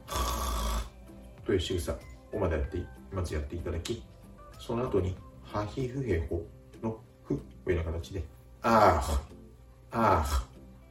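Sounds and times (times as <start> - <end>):
rough rattling throat sound demonstrating the French R: 0.0 - 1.0
speech: 1.5 - 10.5.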